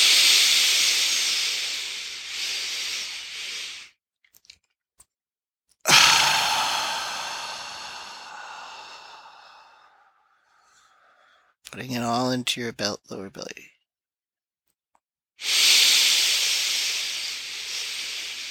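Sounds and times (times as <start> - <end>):
long breathy exhales during a breathing exercise: 0.0 - 3.9, 5.9 - 11.6, 15.4 - 18.4
speech: 11.8 - 13.7.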